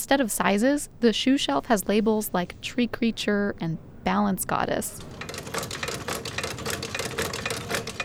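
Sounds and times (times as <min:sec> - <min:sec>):
speech: 0:00.0 - 0:05.8
vintage 1920s sewing machine stitching through a shoe sole: 0:04.9 - 0:08.0.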